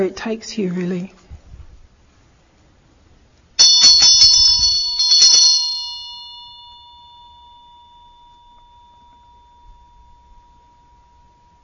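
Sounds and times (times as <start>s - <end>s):
speech: 0.0s - 1.2s
bell being struck and ringing: 3.6s - 11.6s.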